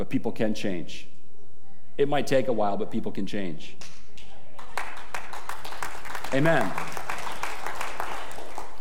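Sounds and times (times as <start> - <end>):
speech: 0.0 - 1.1, 2.0 - 4.3, 6.3 - 7.0
half-hearted crowd clapping: 4.6 - 8.7.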